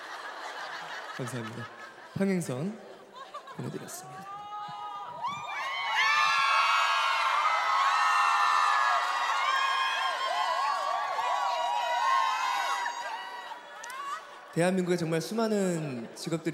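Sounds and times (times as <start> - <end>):
laughter: 0.0 - 5.4
speech: 1.2 - 2.9, 3.6 - 4.4, 14.6 - 16.5
concert audience screaming and cheering: 4.2 - 16.3
high-pitched shrieks and whoops from concert audience: 4.3 - 14.2.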